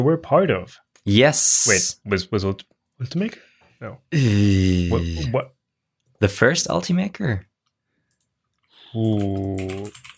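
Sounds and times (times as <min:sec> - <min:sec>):
speech: 0:00.0 - 0:05.6, 0:06.2 - 0:07.5, 0:08.9 - 0:10.1
typing on a mechanical keyboard: 0:08.9 - 0:10.1.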